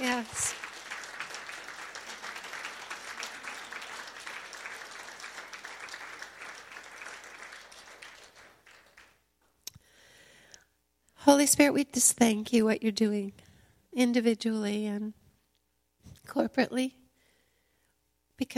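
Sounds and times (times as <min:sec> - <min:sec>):
standing audience clapping and cheering: 0:00.0 - 0:09.3
speech: 0:11.3 - 0:13.4, 0:14.0 - 0:15.2, 0:16.4 - 0:17.0.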